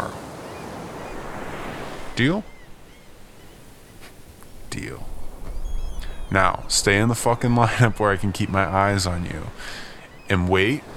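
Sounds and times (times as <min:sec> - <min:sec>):
honking bird call: 0:00.0 - 0:10.9
small ocean waves breaking on shore: 0:00.0 - 0:10.9
speech: 0:02.2 - 0:02.5, 0:06.3 - 0:10.9.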